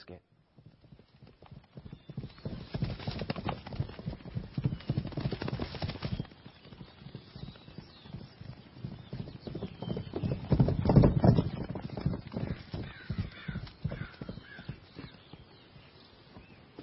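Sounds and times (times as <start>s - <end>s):
speech: 0.0s - 0.3s
horse hooves clip-clopping: 0.3s - 16.8s.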